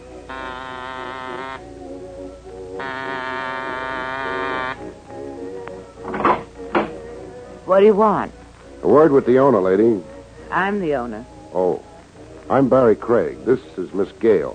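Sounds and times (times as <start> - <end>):
side doorbell of a closed boarded-up museum buzzing: 0.3 - 1.7, 2.8 - 4.9
museum side door clunking and rattling as it opens: 6.0 - 7.0
speech: 7.7 - 11.9, 12.5 - 14.5.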